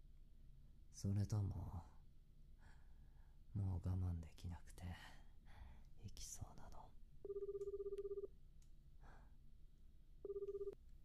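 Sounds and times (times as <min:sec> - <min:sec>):
low hum: 0:00.0 - 0:11.0
speech: 0:01.0 - 0:02.0, 0:03.6 - 0:05.2, 0:06.0 - 0:07.4
old-style telephone ringing: 0:07.2 - 0:08.3, 0:10.2 - 0:10.8.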